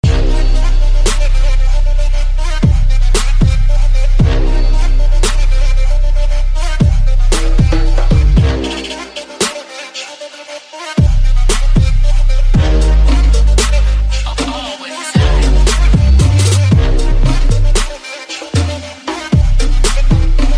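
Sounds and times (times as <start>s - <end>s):
Arab trap music: 0.0s - 20.5s.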